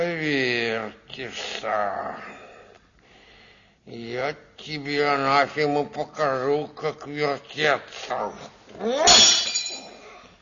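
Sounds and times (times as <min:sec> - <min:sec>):
speech: 0:00.2 - 0:02.5, 0:03.9 - 0:09.5
glass carafe shattering: 0:09.1 - 0:10.0.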